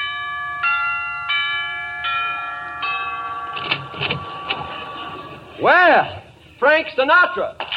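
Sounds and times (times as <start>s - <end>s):
doorbell chime melody of bell-like notes: 0.0s - 5.5s
speech: 5.6s - 7.6s.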